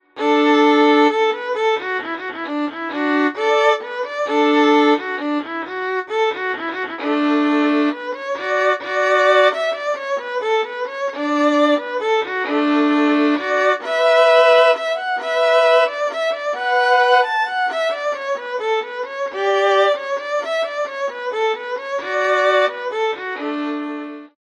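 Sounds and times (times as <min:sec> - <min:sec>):
fiddle playing: 0:00.0 - 0:24.4.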